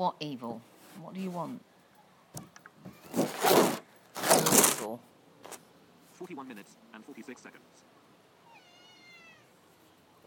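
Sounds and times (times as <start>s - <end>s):
speech: 0.0s - 1.7s, 4.8s - 5.1s, 6.2s - 7.9s
steady hiss: 0.0s - 10.2s
female cat meowing: 8.4s - 9.6s.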